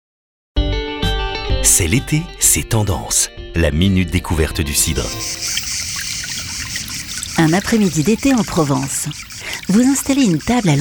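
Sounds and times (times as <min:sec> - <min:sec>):
speech: 0:01.6 - 0:05.9, 0:07.4 - 0:10.8
water trickling from a fountain in Provence: 0:04.8 - 0:10.8.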